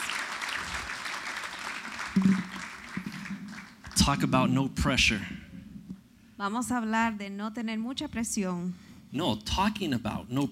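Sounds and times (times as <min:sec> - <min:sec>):
crowd applauding: 0:00.0 - 0:04.2
speech: 0:04.0 - 0:05.4, 0:06.4 - 0:10.4.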